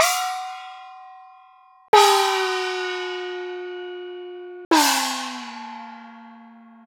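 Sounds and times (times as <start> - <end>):
high gong: 2.0 - 6.8.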